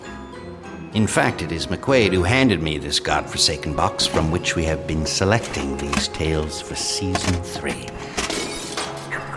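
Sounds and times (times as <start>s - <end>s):
speech: 1.0s - 8.4s
glass shattering inside a house: 7.3s - 9.1s.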